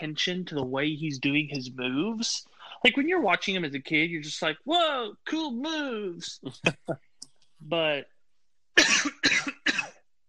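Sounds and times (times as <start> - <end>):
speech: 0.0 - 8.1
person coughing: 8.8 - 10.0.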